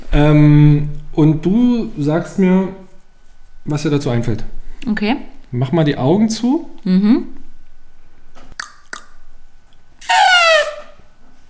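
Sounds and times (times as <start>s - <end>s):
speech: 0.2s - 2.8s, 3.6s - 7.4s
person imitating an elephant's trumpet: 10.0s - 11.0s.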